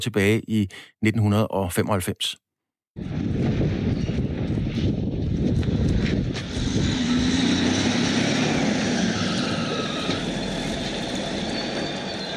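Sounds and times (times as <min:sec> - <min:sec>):
speech: 0:00.0 - 0:02.4, 0:03.0 - 0:03.7
whining tone: 0:03.1 - 0:12.3
heavy wheel loader diesel engine straining while breaking through a prison wall: 0:05.6 - 0:12.3.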